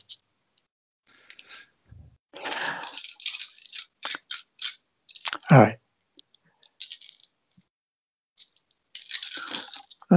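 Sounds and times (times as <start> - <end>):
dice rattling and clattering across a hard surface: 2.4 - 5.5, 6.7 - 7.4, 8.4 - 10.1
speech: 5.5 - 5.8.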